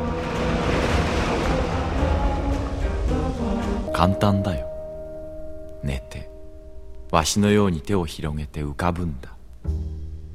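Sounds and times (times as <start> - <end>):
ocean surf washing in: 0.0 - 5.6
speech: 4.0 - 4.7, 5.8 - 6.3, 7.1 - 9.8.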